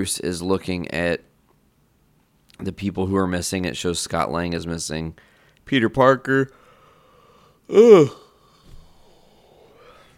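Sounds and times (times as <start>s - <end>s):
speech: 0.0s - 1.3s, 2.6s - 6.6s, 7.7s - 8.2s
person yawning: 7.7s - 8.4s.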